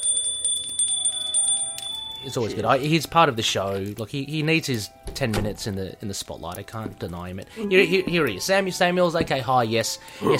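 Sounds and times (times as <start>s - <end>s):
small hand bell ringing: 0.0s - 2.5s
speech: 2.2s - 10.3s.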